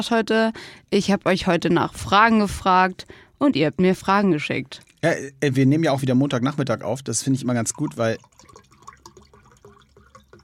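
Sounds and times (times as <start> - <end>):
speech: 0.0 - 8.6
person gulping still water: 7.6 - 10.4.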